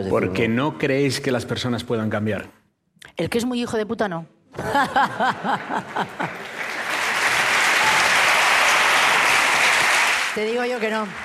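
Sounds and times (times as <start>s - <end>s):
speech: 0.0s - 6.6s, 10.4s - 11.2s
crowd laughing: 4.6s - 7.5s
audience applause: 5.0s - 11.2s
crowd whooping: 7.2s - 10.3s.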